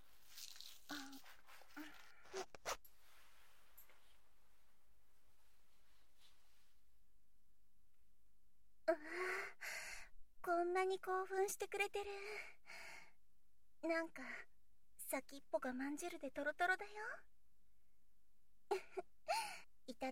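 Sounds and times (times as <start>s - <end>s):
clothing zipper being pulled down: 0.2s - 2.9s
speech: 10.7s - 12.6s, 13.8s - 14.5s, 15.1s - 17.3s, 18.7s - 20.0s.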